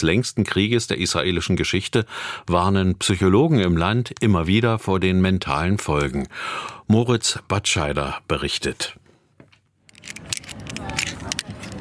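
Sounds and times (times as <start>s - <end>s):
speech: 0.0s - 9.0s, 10.0s - 11.1s
outdoor noise at a sports complex: 9.3s - 11.7s
metal carabiners clicking at an outdoor climbing wall: 9.8s - 11.7s.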